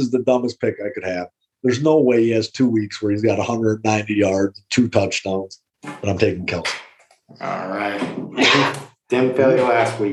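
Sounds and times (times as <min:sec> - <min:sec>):
speech: 0:00.0 - 0:10.1
sharp sneeze close to the mic: 0:08.4 - 0:08.8.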